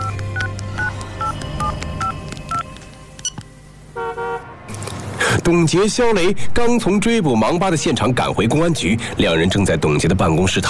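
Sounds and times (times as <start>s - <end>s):
mobile phone dialing tones: 0.0s - 3.4s
speech: 5.5s - 10.6s.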